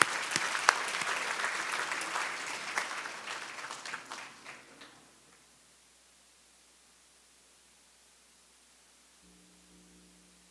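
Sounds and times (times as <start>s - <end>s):
audience applauding: 0.0s - 5.4s.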